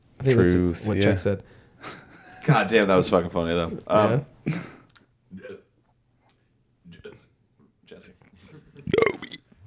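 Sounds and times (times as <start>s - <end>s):
speech: 0.2s - 5.6s
person burping: 5.3s - 5.7s, 8.9s - 9.5s.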